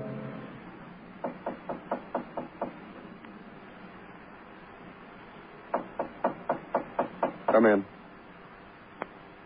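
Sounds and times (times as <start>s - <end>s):
knocking on a door: 1.2s - 3.1s, 5.7s - 7.7s.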